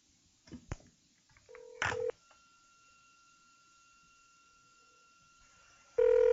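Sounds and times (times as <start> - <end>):
faint steady telephone tone: 1.5 - 5.4, 6.0 - 6.3
loud telephone tone: 6.0 - 6.3.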